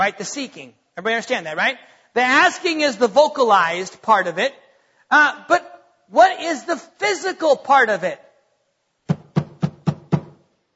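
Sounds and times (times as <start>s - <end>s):
speech: 0.0s - 8.2s
knocks on a hard surface: 9.1s - 10.4s.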